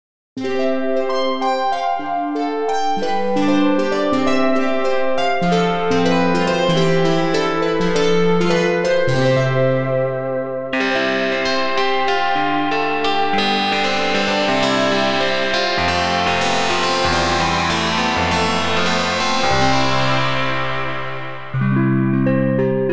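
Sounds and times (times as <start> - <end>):
sweet melody: 0.4 - 22.9.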